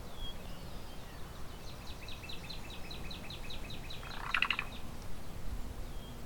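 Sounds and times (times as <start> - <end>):
steady hiss: 0.0 - 6.2
cuckoo calling outdoors while preening: 4.0 - 4.8.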